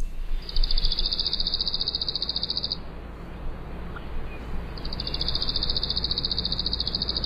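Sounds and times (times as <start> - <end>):
worm-eating warbler dry buzzy trilling song: 0.0 - 2.8, 4.4 - 7.2
low rumble: 0.0 - 7.2.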